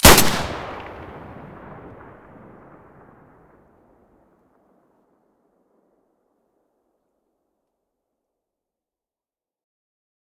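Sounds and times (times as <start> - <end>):
M9A3 pistol muzzle blast: 0.0 - 1.3.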